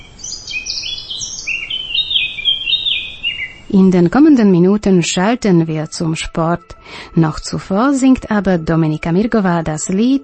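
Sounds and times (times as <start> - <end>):
birds singing with chirps and warbling trills: 0.0 - 5.3
speech: 3.7 - 10.2.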